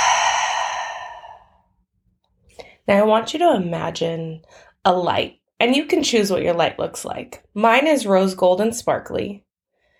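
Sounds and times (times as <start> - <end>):
deep breathy exhale during a guided breathing exercise: 0.0 - 1.6
speech: 2.9 - 9.4.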